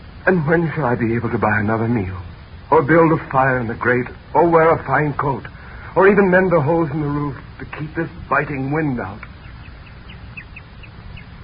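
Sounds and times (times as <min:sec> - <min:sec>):
speech: 0:00.2 - 0:09.3
bird calling: 0:02.7 - 0:11.4.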